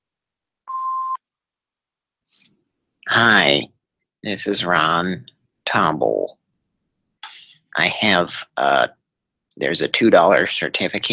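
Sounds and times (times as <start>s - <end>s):
answering machine beep: 0.7s - 1.2s
speech: 3.1s - 6.4s, 7.8s - 9.0s, 9.6s - 11.1s.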